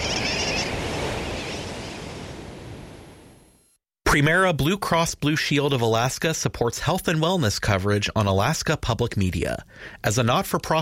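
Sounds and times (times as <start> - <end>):
sooty tern calls: 0.0 - 2.0
roaring wash of surf: 0.0 - 3.5
speech: 4.1 - 10.8.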